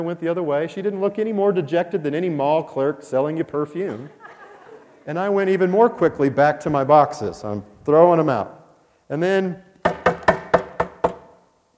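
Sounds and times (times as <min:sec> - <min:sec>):
speech: 0:00.0 - 0:04.4, 0:05.0 - 0:09.7
laughter: 0:03.7 - 0:06.4
sharp knocks on a dumpster door: 0:09.8 - 0:11.4.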